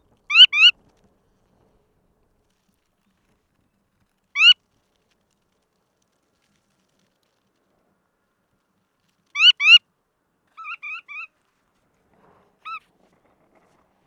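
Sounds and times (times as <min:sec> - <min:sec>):
red knot subspecies roselaari calls: 0:00.3 - 0:00.7, 0:04.4 - 0:04.6, 0:09.4 - 0:09.8, 0:10.6 - 0:11.3.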